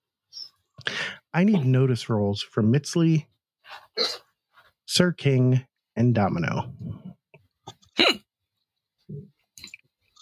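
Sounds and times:
speech: 1.3 - 3.3, 4.9 - 7.1
person hiccuping: 7.8 - 8.3.

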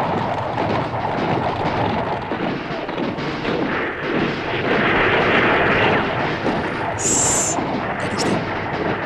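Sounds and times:
distant gunfire and artillery: 0.0 - 9.0
brief high-pitched tones: 7.0 - 8.4.

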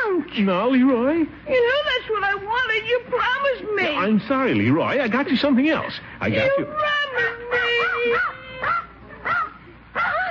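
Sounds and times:
speech: 0.4 - 7.4
dog yelping and whimpering after rushing in through a back door: 5.8 - 10.2.

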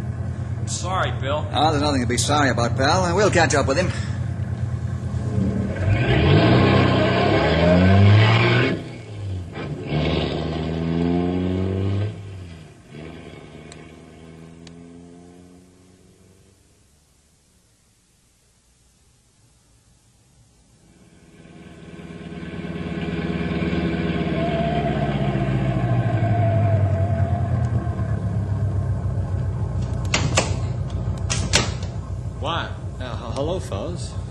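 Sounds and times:
car engine roaring and revving during a chase down a bad road: 0.0 - 16.8, 20.8 - 34.2
speech: 0.7 - 4.2
sharp clattering knocks: 29.8 - 32.2.

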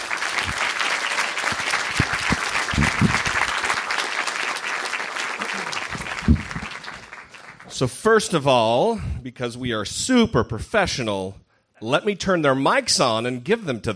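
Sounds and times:
audience applause: 0.0 - 7.8
speech: 7.8 - 13.9.

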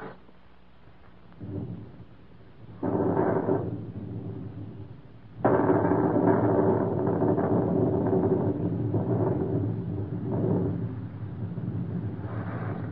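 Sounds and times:
deep rolling thunder in a thunderstorm: 1.3 - 12.9.

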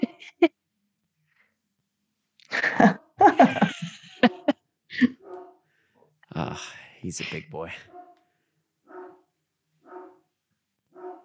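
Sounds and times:
laughter: 3.2 - 5.2
big black Labrador barking deep woofs: 5.2 - 5.7, 7.8 - 8.2, 8.8 - 10.3, 10.9 - 11.2
speech: 7.1 - 8.0.

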